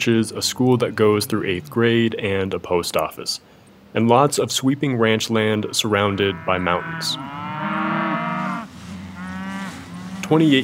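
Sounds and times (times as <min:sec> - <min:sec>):
speech: 0:00.0 - 0:07.4, 0:10.3 - 0:10.6
cattle herd mooing on a ranch in Helmville, Montana: 0:06.0 - 0:10.6.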